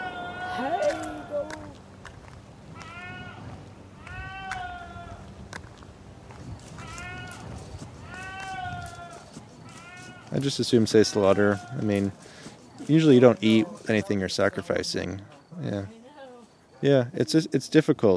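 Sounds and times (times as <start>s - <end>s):
goat bleating: 0.0s - 1.7s, 2.8s - 5.2s, 6.7s - 10.4s, 11.0s - 12.0s
low rumble: 0.0s - 10.3s
speech: 0.6s - 1.6s, 10.3s - 16.0s, 16.8s - 18.1s.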